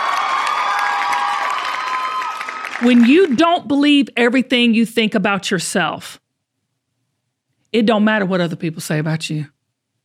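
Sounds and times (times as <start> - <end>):
audience cheering with shouts and whoops: 0.0 - 3.0
audience hand clapping: 0.0 - 3.8
speech: 2.8 - 6.2, 7.7 - 9.6.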